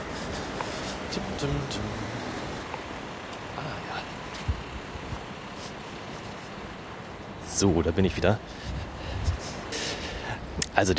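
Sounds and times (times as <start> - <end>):
street traffic roar at a pedestrian crossing: 0.0 - 10.9
speech: 1.2 - 2.2, 7.6 - 8.7, 10.8 - 10.9.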